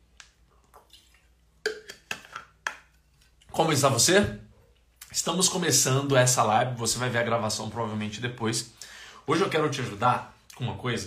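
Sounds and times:
person sipping water: 0.4s - 2.1s
speech: 3.6s - 4.4s, 5.1s - 11.0s.

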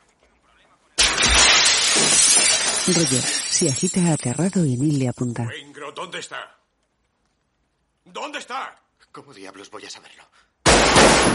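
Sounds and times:
glass door shattering from a wrought-iron terrace chair thrown through it: 1.0s - 4.6s, 10.7s - 11.3s
spray of breaking and falling glass: 1.0s - 4.8s, 10.7s - 11.3s
speech: 2.9s - 6.6s, 8.1s - 10.5s.

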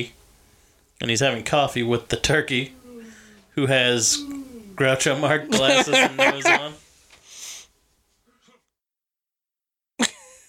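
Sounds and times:
speech: 0.0s - 0.2s, 1.0s - 2.8s, 3.6s - 6.8s
breathy rush of air: 2.7s - 4.8s
laughter: 4.8s - 6.8s.

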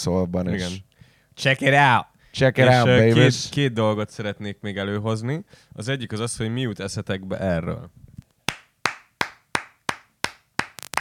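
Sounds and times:
speech: 0.0s - 8.0s
hand clapping: 8.5s - 10.9s.

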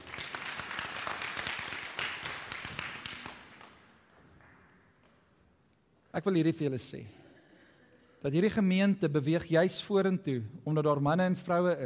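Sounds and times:
church audience applauding: 0.0s - 5.2s
speech: 6.1s - 7.2s, 8.2s - 11.8s.

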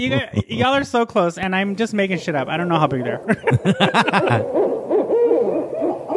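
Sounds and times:
laughter: 0.0s - 0.8s, 3.2s - 4.5s
speech: 0.0s - 4.7s
barred owl hooting: 4.0s - 6.1s
other barred owl hoots: 4.3s - 6.1s.

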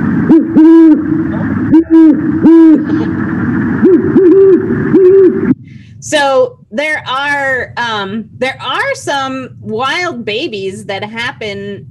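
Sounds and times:
steady hiss: 0.0s - 11.8s
adult great horned owl hooting: 0.3s - 3.2s, 3.8s - 5.6s
speech: 6.0s - 11.8s.

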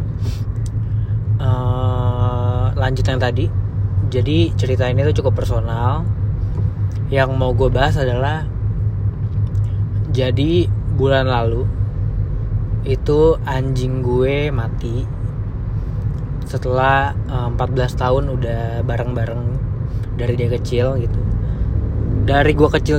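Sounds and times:
car engine rumble inside a moving car: 0.0s - 22.9s
speech: 2.9s - 6.2s, 7.1s - 8.5s, 10.1s - 11.8s, 12.8s - 15.2s, 16.5s - 19.6s, 20.2s - 21.2s, 22.3s - 22.9s.

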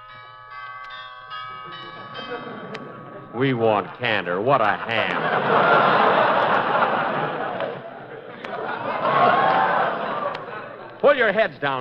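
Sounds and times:
doorbell chimes ringing: 0.0s - 6.0s
speech: 1.7s - 6.2s, 11.2s - 11.7s
laughter: 1.7s - 11.4s.

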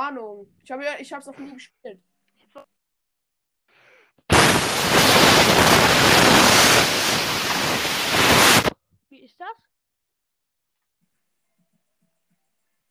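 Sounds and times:
speech: 0.0s - 2.8s, 9.1s - 9.7s
hiss of spraying water from a shield sprinkler in a video game: 4.3s - 8.7s.

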